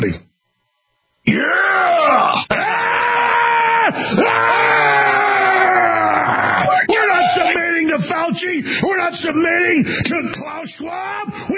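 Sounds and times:
speech: 0:00.0 - 0:00.2, 0:08.3 - 0:11.5
man screaming and yelling in strained bellows: 0:01.3 - 0:08.1, 0:10.5 - 0:11.5.

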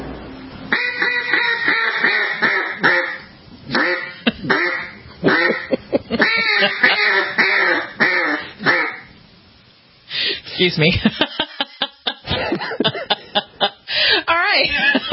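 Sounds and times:
duck call quacking in raspy nasal honks: 0:00.7 - 0:09.1
laughter: 0:05.2 - 0:07.3, 0:11.0 - 0:13.8, 0:14.6 - 0:15.1
speech: 0:10.6 - 0:11.3.

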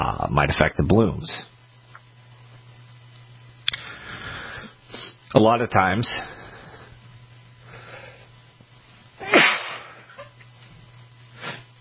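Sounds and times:
speech: 0:00.0 - 0:01.5, 0:05.3 - 0:06.4
low steady hum: 0:00.0 - 0:11.7
person sneezing turned away from the microphone: 0:09.2 - 0:10.2.

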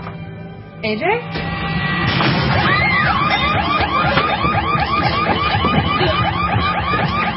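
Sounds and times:
speech: 0:00.9 - 0:01.4
door being smashed in: 0:01.4 - 0:07.3
electronic home security alarm shrieking in rapid warbles: 0:02.3 - 0:07.3.

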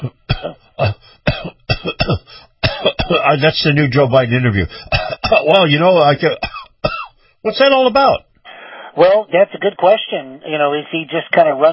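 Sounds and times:
speech: 0:00.0 - 0:00.6, 0:03.3 - 0:06.5, 0:07.4 - 0:08.3, 0:09.0 - 0:11.7
man coughing: 0:00.0 - 0:03.4, 0:04.8 - 0:05.6, 0:06.3 - 0:07.2.

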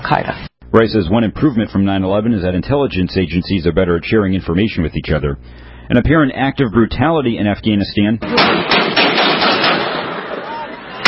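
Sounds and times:
dense noise: 0:00.0 - 0:11.0
speech: 0:00.1 - 0:08.9
gunfire from a low-fidelity video recording: 0:08.2 - 0:10.4.

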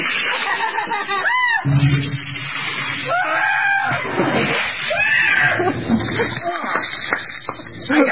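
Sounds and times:
laughter: 0:00.1 - 0:01.7
people screaming as ice water is dumped on them: 0:01.1 - 0:01.7, 0:03.0 - 0:06.8.

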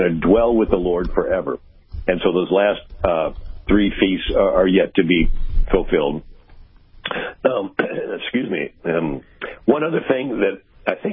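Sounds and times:
speech: 0:00.0 - 0:06.3, 0:07.1 - 0:11.1
person clearing throat while speaking: 0:07.1 - 0:08.2.

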